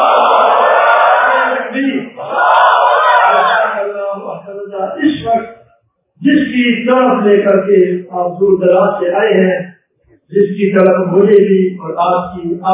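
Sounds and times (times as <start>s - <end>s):
crowd at a religious gathering chanting the takbir slogan: 0.0s - 4.5s
speech: 6.2s - 9.7s, 10.3s - 12.7s.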